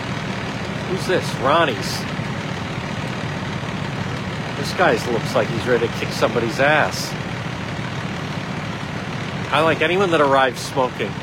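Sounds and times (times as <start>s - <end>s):
large tow truck engine idling: 0.0s - 11.2s
speech: 0.9s - 2.2s, 4.6s - 7.2s, 9.5s - 11.2s.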